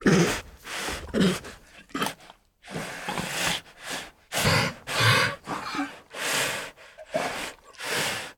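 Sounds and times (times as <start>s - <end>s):
Siberian tiger snorting: 0.0s - 6.2s
Siberian tiger huffing and puffing hard: 0.0s - 8.3s.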